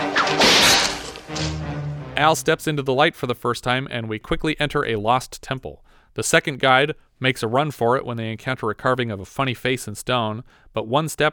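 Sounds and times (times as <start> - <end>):
whip crack on a mountain: 0.0 - 1.7
harsh tearing impact of a whip severing an arm: 0.0 - 1.9
speech: 2.2 - 11.3.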